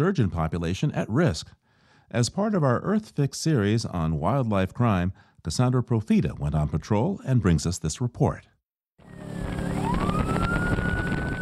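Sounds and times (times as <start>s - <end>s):
speech: 0.0s - 8.5s
police boat siren wailing during a high-speed chase on the Columbia River: 9.0s - 11.4s.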